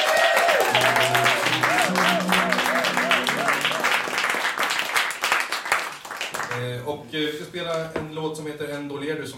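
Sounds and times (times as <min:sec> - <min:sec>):
audience cheering voices: 0:00.0 - 0:06.0
audience clapping to welcome a guest performer: 0:00.0 - 0:06.7
speech: 0:07.0 - 0:09.3.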